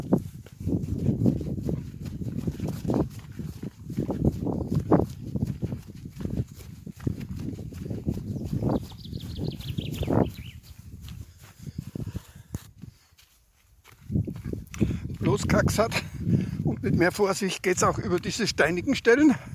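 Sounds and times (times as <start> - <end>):
barefoot running footsteps on meadow grass: 0.0 - 19.5
speech: 15.4 - 16.1, 16.8 - 19.5.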